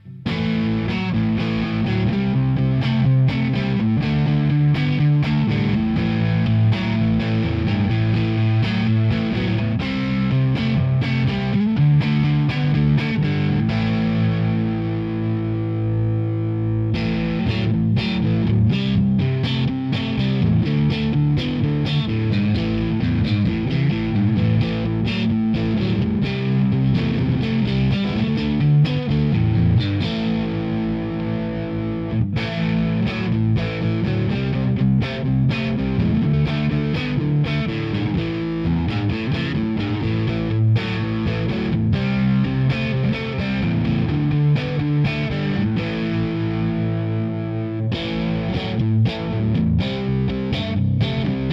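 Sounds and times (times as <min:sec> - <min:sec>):
distorted rock guitar through an amplifier: 0:00.0 - 0:51.5.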